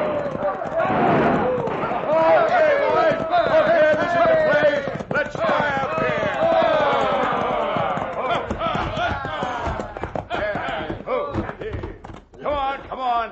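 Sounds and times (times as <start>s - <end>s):
gunshots: 0.0s - 3.2s
men whooping and shouting: 0.0s - 11.9s
galloping horse hooves: 0.0s - 13.2s.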